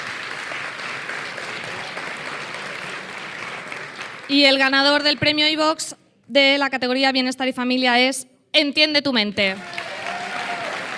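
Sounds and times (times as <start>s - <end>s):
audience applause for award nominees: 0.0s - 5.6s, 9.6s - 10.9s
speech: 4.3s - 9.8s.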